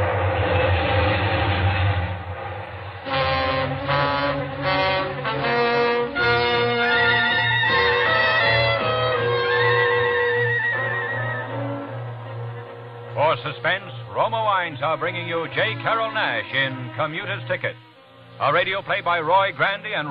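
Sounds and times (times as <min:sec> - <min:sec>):
long loud train thundering past: 0:00.0 - 0:19.7
train horn blaring: 0:03.0 - 0:13.7, 0:14.9 - 0:19.8
speech: 0:14.8 - 0:17.8, 0:18.4 - 0:20.0.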